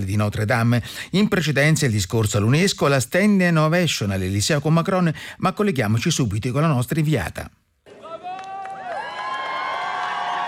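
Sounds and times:
speech: 0.0 - 7.6
dense crowd cheering and chanting in the streets of the Left Bank in Paris: 7.9 - 10.4.

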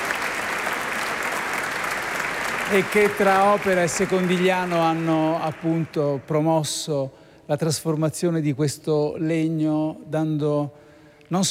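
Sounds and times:
audience applause at a ceremony: 0.0 - 6.3
speech: 2.7 - 11.4.

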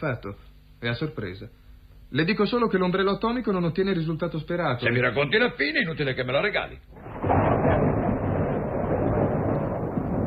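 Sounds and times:
speech: 0.0 - 7.2
deep sustained rumble of thunder: 7.0 - 10.2.

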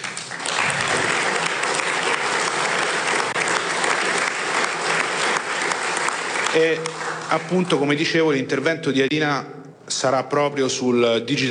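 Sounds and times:
crowd applauding: 0.0 - 8.3
speech: 6.6 - 11.4.

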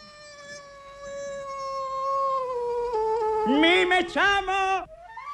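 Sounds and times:
human voice imitating a cat meowing: 0.0 - 4.9
speech: 3.4 - 4.8.

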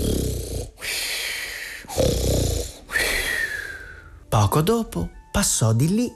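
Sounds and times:
loud snoring: 0.0 - 1.0, 1.8 - 3.4
speech: 4.4 - 6.1.

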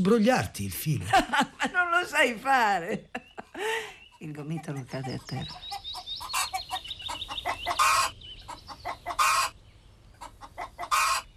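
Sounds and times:
speech: 0.0 - 5.8
laughter: 1.0 - 2.1, 2.8 - 4.0
hen clucking: 3.1 - 9.6, 10.2 - 11.3.

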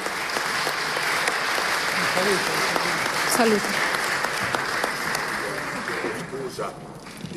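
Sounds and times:
sustained applause from a large audience at an event on health: 0.0 - 6.6
speech: 2.2 - 2.7, 3.4 - 3.9.

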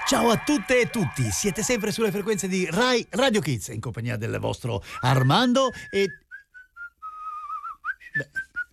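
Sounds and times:
speech: 0.1 - 6.2, 8.2 - 8.4
person whistling a lively tune: 4.9 - 8.7.

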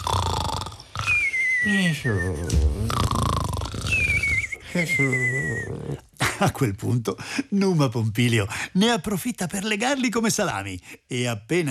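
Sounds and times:
person imitating two sleepers snoring: 0.0 - 6.1
speech: 1.6 - 3.2, 4.7 - 11.6.

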